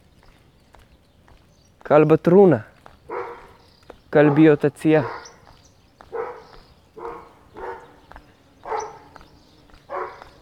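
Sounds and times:
speech: 1.9s - 2.7s, 4.1s - 5.2s
dogs barking on both sides of fence: 2.8s - 10.4s.

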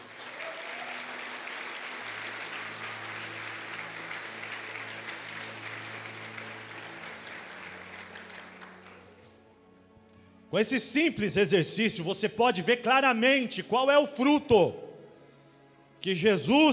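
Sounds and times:
audience applause with many hands clapping: 0.0s - 9.4s
speech: 10.5s - 14.8s, 16.0s - 16.7s.

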